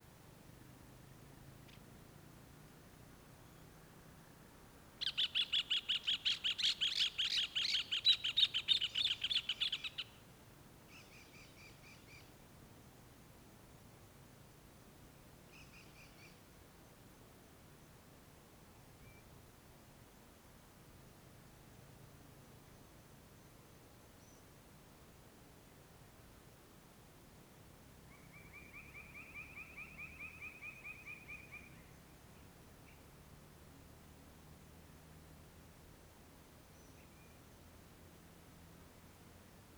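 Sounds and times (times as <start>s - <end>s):
light wind: 0.0s - 39.7s
two birds calling to each other: 5.0s - 10.1s.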